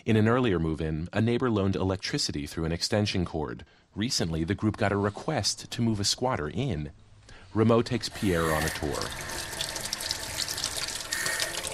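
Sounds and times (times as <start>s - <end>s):
speech: 0.0s - 9.6s
tap water running inside a vacant house: 7.8s - 11.7s.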